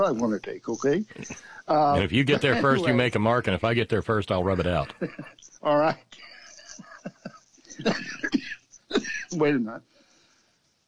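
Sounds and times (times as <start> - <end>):
speech: 0.0 - 6.3, 7.8 - 9.9
person clearing throat: 7.8 - 9.3
person coughing: 7.8 - 9.3.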